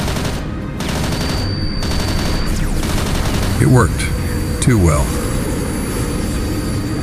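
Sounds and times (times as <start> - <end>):
sustained rapid automatic gunfire from aircraft guns: 0.0 - 3.7
damaged airplane engine roaring on a plane going down: 2.0 - 7.0
speech: 3.6 - 5.2.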